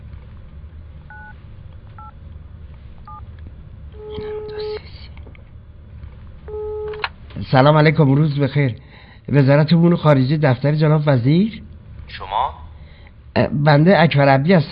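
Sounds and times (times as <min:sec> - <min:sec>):
low hum: 0:00.0 - 0:14.6
telephone keypad tones as a number is dialed: 0:01.1 - 0:01.3, 0:04.0 - 0:04.8, 0:06.5 - 0:07.1
speech: 0:07.5 - 0:12.6, 0:13.4 - 0:14.6.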